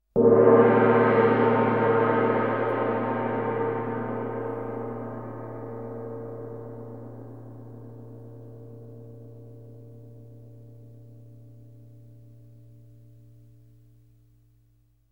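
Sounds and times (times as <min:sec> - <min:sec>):
gong strike: 0:00.2 - 0:07.2.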